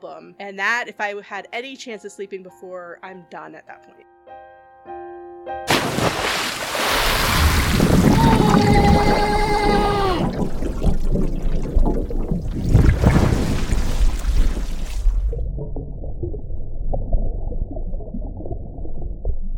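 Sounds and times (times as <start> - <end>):
speech: 0.0 - 4.4
churning rushing water: 5.7 - 15.3
loud splash: 5.7 - 15.4
low underwater gurgle: 7.3 - 19.5
wavering strained drowning yells: 8.0 - 10.5.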